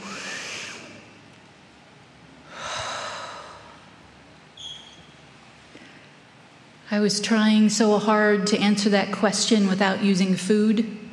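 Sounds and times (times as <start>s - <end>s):
deep breath: 0.0s - 1.0s, 2.5s - 3.9s
speech: 6.9s - 11.0s.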